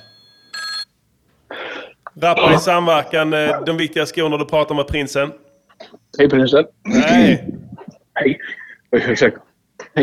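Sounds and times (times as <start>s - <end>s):
telephone ringing with electronic bursts: 0.0s - 0.9s
speech: 2.2s - 7.6s, 8.2s - 9.4s.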